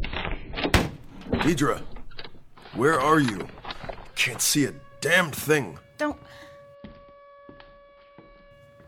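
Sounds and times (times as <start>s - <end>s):
speech: 1.4s - 1.9s, 2.8s - 3.6s, 4.2s - 6.5s
steady droning siren wail: 2.7s - 8.8s.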